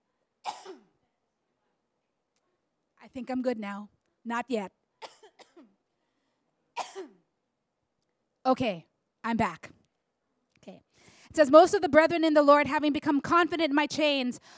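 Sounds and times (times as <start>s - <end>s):
person coughing: 0.4s - 0.9s, 5.0s - 5.7s, 6.8s - 7.3s
speech: 3.0s - 4.8s, 8.4s - 9.8s, 10.6s - 14.5s.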